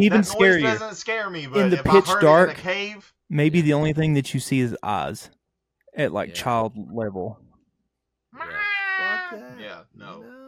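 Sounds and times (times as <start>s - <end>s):
speech: 0.0s - 5.4s, 6.0s - 7.4s, 9.3s - 10.4s
person imitating a cat's drawn-out wavering meow: 8.4s - 10.4s.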